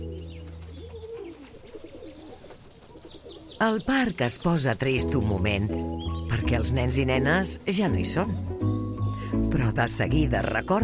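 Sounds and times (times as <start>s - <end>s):
family of pigeons cooing in a park: 0.1s - 4.2s
speech: 3.6s - 8.5s, 9.5s - 10.8s.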